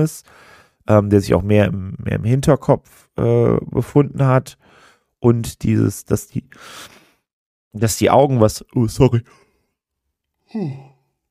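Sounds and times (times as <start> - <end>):
speech: 0.0 - 7.0, 7.7 - 9.4, 10.5 - 10.9
yawn: 10.4 - 11.2.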